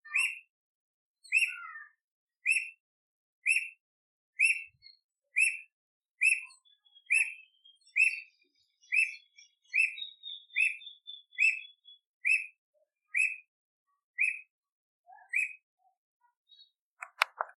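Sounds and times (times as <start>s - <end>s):
Alma de gato squirrel cuckoo singing: 0.0s - 0.5s, 1.2s - 2.7s, 3.4s - 3.7s, 4.4s - 13.5s, 14.2s - 14.5s, 15.1s - 15.6s.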